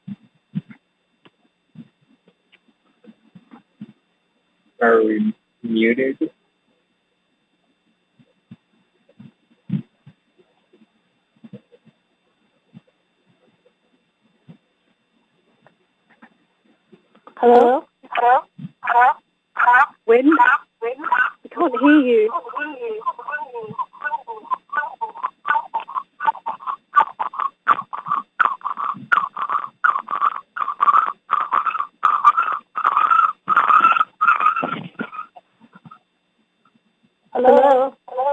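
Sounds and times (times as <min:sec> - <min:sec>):
garbled voice on tinny phone-line audio with echo: 0:04.8 - 0:06.3, 0:17.4 - 0:36.0, 0:37.4 - 0:38.3
speech: 0:04.8 - 0:06.4.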